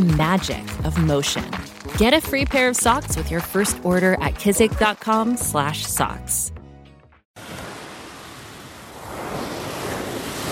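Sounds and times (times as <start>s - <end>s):
speech: 0.0s - 6.6s
sea waves washing onto a shore: 7.4s - 10.5s.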